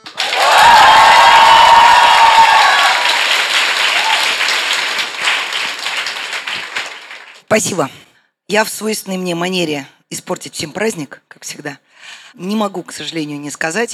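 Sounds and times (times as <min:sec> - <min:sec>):
crowd of hundreds applauding and cheering in Moscow: 0:00.0 - 0:07.5
crowd whoops and shouts: 0:00.1 - 0:04.6
speech: 0:07.6 - 0:13.9.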